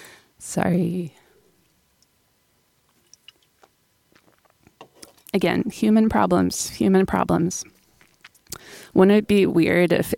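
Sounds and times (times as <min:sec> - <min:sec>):
speech: 0:00.5 - 0:01.2, 0:05.4 - 0:07.8, 0:08.7 - 0:10.1
person sipping water: 0:02.9 - 0:05.3, 0:07.8 - 0:08.8.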